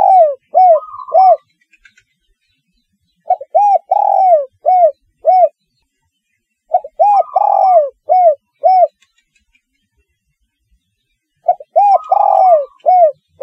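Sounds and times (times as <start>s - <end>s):
spotted dove cooing: 0.0s - 1.5s, 3.3s - 5.5s, 6.7s - 9.0s, 11.4s - 13.4s.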